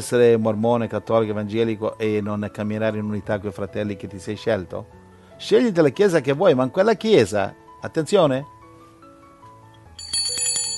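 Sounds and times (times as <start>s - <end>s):
speech: 0.0s - 8.6s
small bell rung at a church gathering to call for attention: 9.8s - 10.7s.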